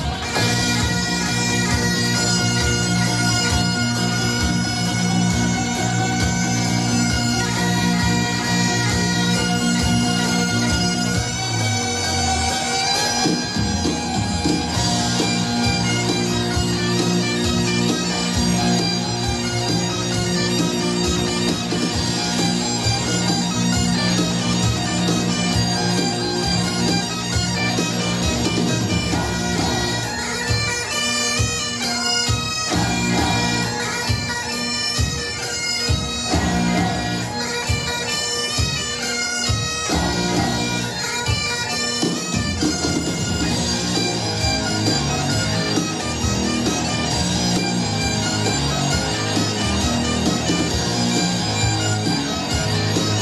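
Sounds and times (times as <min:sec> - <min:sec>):
bagpipes: 0:00.0 - 0:53.2.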